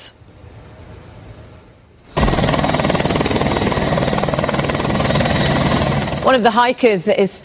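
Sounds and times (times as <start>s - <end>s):
rescue helicopter rotor blades thumping overhead: 2.1s - 6.9s
speech: 6.3s - 7.4s.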